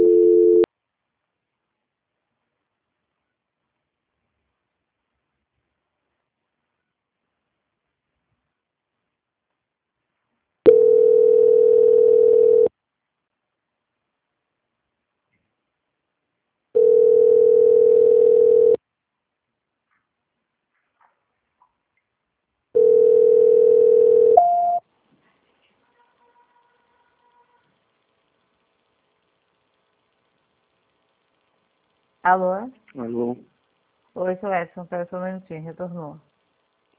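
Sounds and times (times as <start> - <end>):
steady mid-pitched telephone tone during call transfer: 0.0 - 0.7, 10.7 - 12.7, 16.8 - 18.8, 22.8 - 24.8
speech: 32.2 - 33.5, 34.2 - 36.3.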